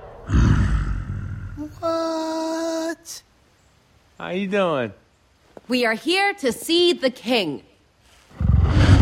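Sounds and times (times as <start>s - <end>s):
huge gorilla roaring: 0.2s - 1.8s, 8.3s - 9.0s
speech: 1.6s - 2.3s, 2.9s - 3.3s, 4.2s - 5.0s, 5.6s - 7.7s.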